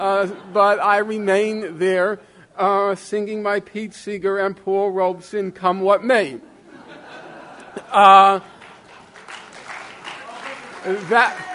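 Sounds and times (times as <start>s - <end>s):
laughter: 0.0s - 1.1s, 6.4s - 9.2s
speech: 0.0s - 6.5s, 7.9s - 8.5s, 10.8s - 11.5s
audience clapping: 8.3s - 11.5s.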